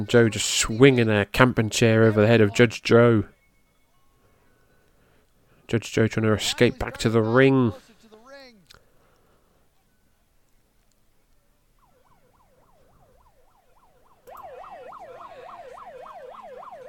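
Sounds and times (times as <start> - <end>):
wrestling commentary voices: 0.0 - 3.3, 5.7 - 8.8, 15.0 - 16.0
speech: 0.0 - 3.4, 5.7 - 7.8
siren wailing in rapid up-and-down sweeps at wrestling ringside: 11.8 - 16.8.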